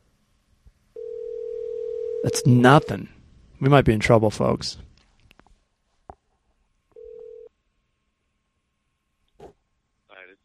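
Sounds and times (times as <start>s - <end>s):
single-pitched telephone ringback tone during outgoing call: 1.0s - 3.0s, 7.0s - 7.5s
speech: 2.2s - 4.9s.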